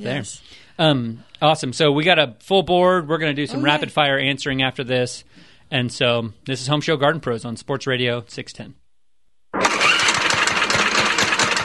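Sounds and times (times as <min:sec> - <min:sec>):
speech: 0:00.0 - 0:08.8
lawnmower engine starting and running: 0:09.6 - 0:11.6.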